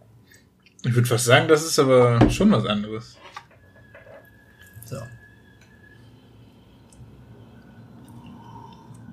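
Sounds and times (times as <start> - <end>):
low hum: 0.0 - 9.1
speech: 0.8 - 3.3
person sipping soda: 8.0 - 9.1.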